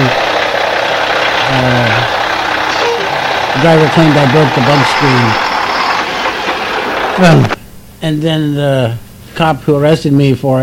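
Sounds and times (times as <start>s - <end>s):
truck engine running: 0.0s - 7.6s
speech: 3.6s - 5.5s, 7.2s - 10.6s.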